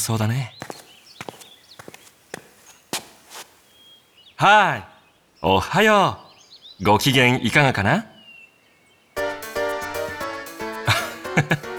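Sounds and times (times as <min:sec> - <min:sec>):
speech: 0:00.0 - 0:00.6, 0:04.4 - 0:06.2, 0:06.8 - 0:08.1, 0:11.4 - 0:11.7
footsteps of a person walking while carrying a notebook: 0:00.6 - 0:03.9
laughter: 0:10.7 - 0:11.7.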